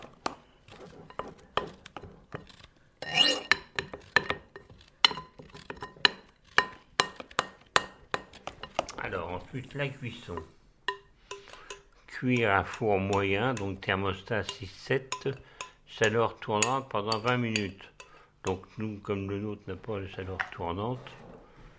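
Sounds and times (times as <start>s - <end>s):
utensil clinking and scraping against a bowl while pouring cake batter: 0.4s - 15.4s
speech: 9.6s - 10.6s, 12.2s - 21.2s.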